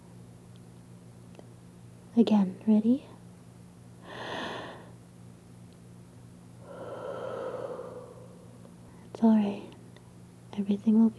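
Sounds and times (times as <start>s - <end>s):
speech: 2.2s - 3.1s, 10.7s - 11.1s
deep slow breathing in and out: 4.0s - 4.9s, 6.6s - 9.0s.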